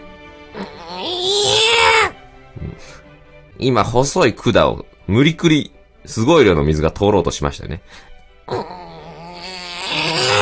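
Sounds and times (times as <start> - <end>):
person imitating a newborn baby crying: 0.5 - 2.8, 8.5 - 10.4
speech: 0.6 - 1.4, 3.6 - 8.6.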